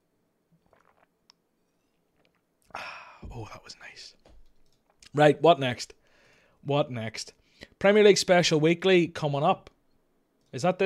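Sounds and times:
person gulping water while drinking: 0.6s - 1.4s, 2.1s - 2.8s
speech: 3.4s - 4.3s, 5.1s - 6.0s, 6.6s - 9.7s, 10.5s - 10.8s.

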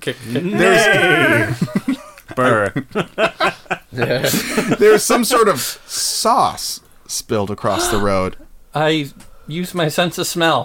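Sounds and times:
speech: 0.0s - 10.6s
laughter: 0.5s - 5.4s
person imitating neighing of kicking horses hitched to an overturned cart: 7.7s - 8.5s.

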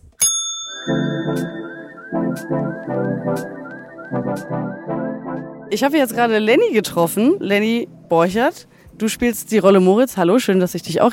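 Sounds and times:
kitchen order bell ding: 0.2s - 2.2s
whistled-sounding melody over a rhythmic backing with percussive hits: 0.8s - 5.7s
speech: 0.8s - 11.1s.

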